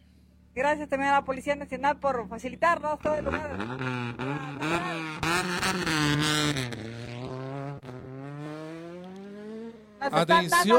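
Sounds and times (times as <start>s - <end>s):
speech: 0.6s - 4.9s, 10.1s - 10.7s
rally car engine roaring and revving as it drives past: 3.1s - 10.2s.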